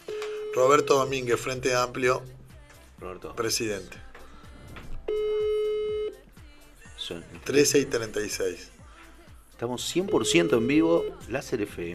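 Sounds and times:
telephone ringing tone while dialing a call from a radio studio: 0.0s - 1.5s, 5.1s - 6.2s, 10.0s - 11.4s
speech: 0.6s - 2.4s, 3.0s - 4.1s, 7.1s - 8.8s, 9.6s - 11.9s.

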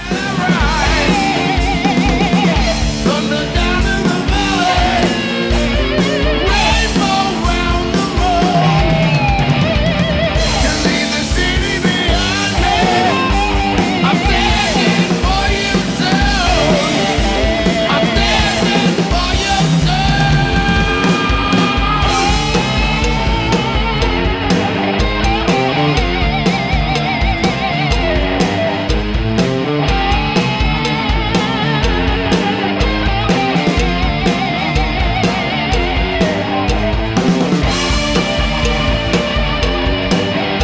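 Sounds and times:
loud rock song with heavy guitars and pounding drums: 0.0s - 40.6s.

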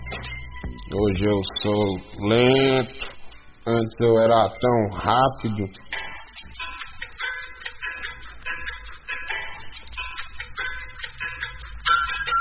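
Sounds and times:
clock ticking: 0.0s - 12.3s
speech: 1.0s - 5.9s.

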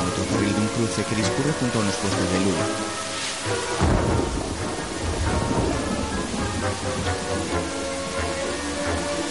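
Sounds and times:
heavy rain pouring in a thunderstorm: 0.0s - 9.2s
speech: 0.8s - 4.2s
deep low rumbles of thunder: 3.6s - 9.1s.

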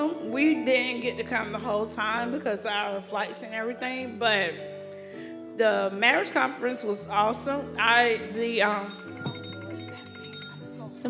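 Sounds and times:
speech: 0.4s - 4.7s, 5.6s - 9.1s
phone alarm ringing: 8.8s - 10.7s.

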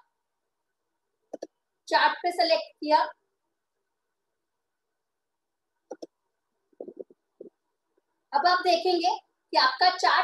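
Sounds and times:
computer mouse double click: 1.3s - 1.5s, 5.9s - 6.2s
speech: 1.9s - 3.2s, 8.3s - 10.2s.

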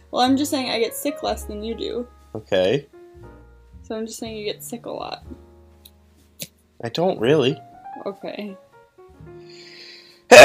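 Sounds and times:
speech: 0.1s - 5.4s, 6.8s - 8.6s
soft drawn-in breath with a faint tonal hum: 9.4s - 10.3s.

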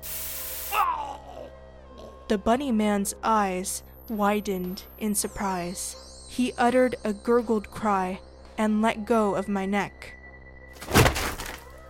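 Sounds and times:
pepper spray being sprayed: 0.0s - 0.8s
speech: 2.3s - 10.2s.

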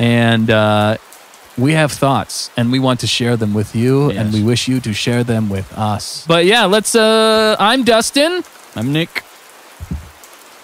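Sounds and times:
speech: 0.0s - 9.9s
rain falling with a soft steady patter: 0.0s - 10.6s
heavier drops thudding on a surface: 9.8s - 10.2s.

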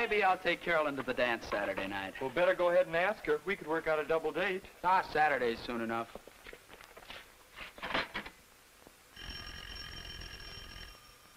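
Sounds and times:
speech: 0.0s - 6.2s
rustles of movement: 6.0s - 8.4s
old heavy telephone bell ringing: 9.1s - 11.3s.

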